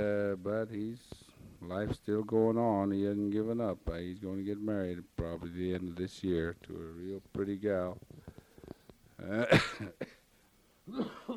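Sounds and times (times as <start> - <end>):
speech: 0.0 - 8.2, 9.2 - 10.2, 10.9 - 11.3
breathing: 8.1 - 8.9
single loud harsh cough with throaty rasp: 9.3 - 10.2, 10.9 - 11.3.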